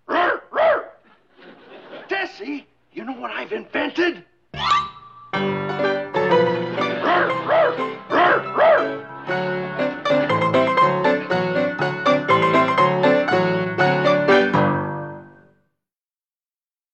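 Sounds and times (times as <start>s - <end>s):
dog barking: 0.1s - 1.1s, 7.0s - 9.0s
speech: 2.3s - 4.3s
bright busy music: 4.6s - 15.2s.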